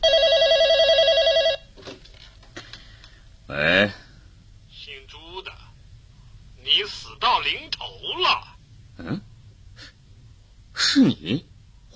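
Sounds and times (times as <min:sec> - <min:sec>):
telephone ringing with a warbling electronic tone: 0:00.0 - 0:01.7
low noise: 0:00.0 - 0:11.9.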